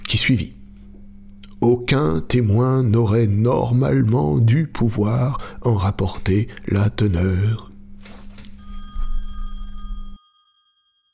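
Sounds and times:
low steady hum: 0.0s - 10.2s
speech: 0.2s - 0.6s, 1.6s - 7.7s
telephone ringing in an electric trill: 8.3s - 11.1s.

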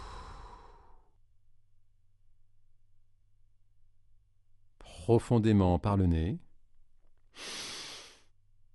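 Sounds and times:
deep breath exhaled through the mouth: 0.0s - 1.1s, 7.4s - 8.3s
speech: 4.8s - 6.4s, 7.4s - 7.6s.

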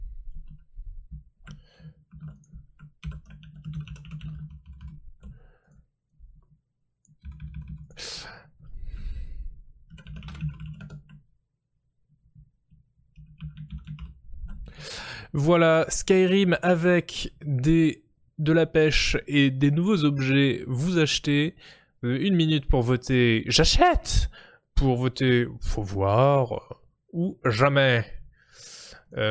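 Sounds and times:
computer keyboard typing: 0.3s - 5.8s, 7.0s - 8.0s, 9.8s - 11.2s, 12.7s - 14.7s
faint breathing: 1.5s - 2.1s, 5.2s - 5.9s, 7.9s - 9.7s, 14.7s - 15.4s, 21.6s - 22.0s, 24.3s - 24.7s, 28.3s - 29.1s
speech: 15.3s - 29.2s.

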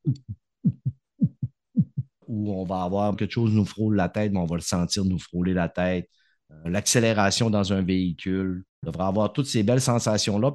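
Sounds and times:
heartbeat thumping: 0.0s - 2.2s
speech: 2.4s - 10.5s.

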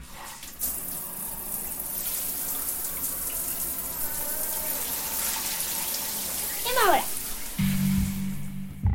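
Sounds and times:
small bathroom shower water running: 0.0s - 8.8s.

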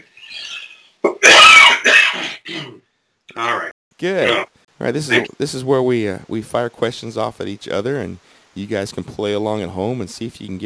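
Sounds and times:
man coughing: 1.1s - 2.8s
speech: 3.4s - 10.6s.

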